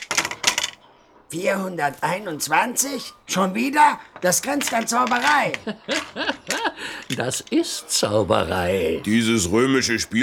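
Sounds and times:
three dice clattering during a game in a hut: 0:00.0 - 0:00.8, 0:04.0 - 0:07.6
speech: 0:01.3 - 0:10.2
laughter: 0:05.2 - 0:08.3.

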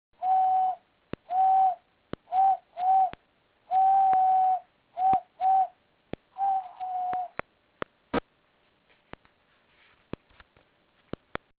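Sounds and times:
European turtle dove purring coos: 0:00.2 - 0:05.8, 0:06.4 - 0:07.4.

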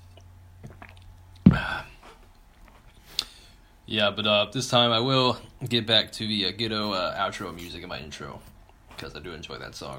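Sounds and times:
person sipping water: 0:00.0 - 0:02.1
speech: 0:03.9 - 0:09.9.

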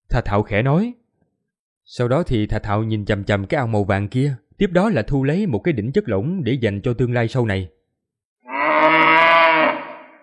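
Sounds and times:
speech: 0:00.1 - 0:01.0, 0:01.9 - 0:07.8
ox bellowing: 0:08.4 - 0:10.2.

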